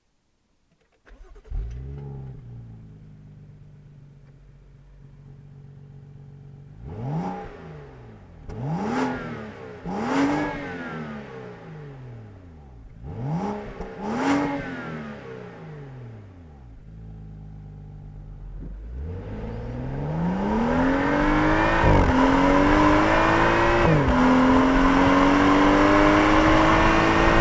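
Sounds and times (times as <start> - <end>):
BMW 335i M Sport car engine: 0.8 - 27.3.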